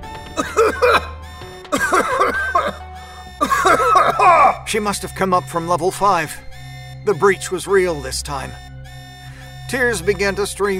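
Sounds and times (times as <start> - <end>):
harsh throaty coughing: 0.4 - 2.8, 3.4 - 4.7
speech: 4.7 - 8.7, 9.7 - 10.7.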